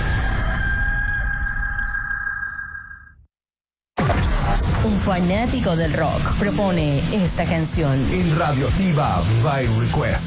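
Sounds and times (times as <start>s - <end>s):
rooster crowing: 0.2s - 2.1s
noisy background: 4.1s - 10.2s
speech: 5.0s - 10.2s.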